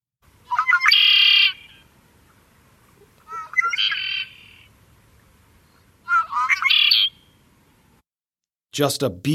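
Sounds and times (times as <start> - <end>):
red-winged blackbird song: 0.5 - 4.8, 5.6 - 7.4
speech: 8.8 - 9.3.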